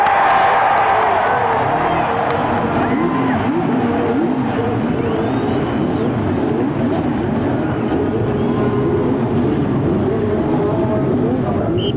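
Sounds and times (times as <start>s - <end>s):
large crowd cheering and clapping: 0.0s - 9.2s
many race car engines firing up and revving: 0.0s - 11.9s.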